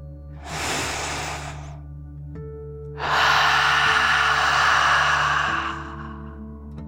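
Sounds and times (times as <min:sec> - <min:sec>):
deep breath drawn in through the nose: 0:00.4 - 0:01.8, 0:03.0 - 0:06.4
forceful exhale out through the mouth: 0:00.4 - 0:01.8, 0:03.0 - 0:06.4.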